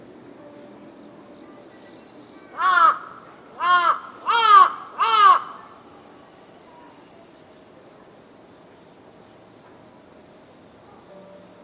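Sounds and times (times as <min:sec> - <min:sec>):
crow cawing in Tokyo Japan: 0:02.6 - 0:05.6.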